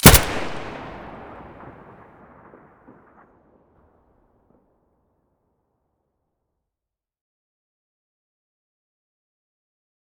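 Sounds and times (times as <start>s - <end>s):
Abakan rifle muzzle shot: 0.0s - 2.0s.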